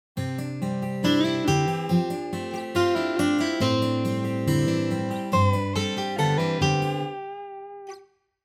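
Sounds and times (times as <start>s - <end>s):
MIDI lead guitar: 0.2s - 8.0s.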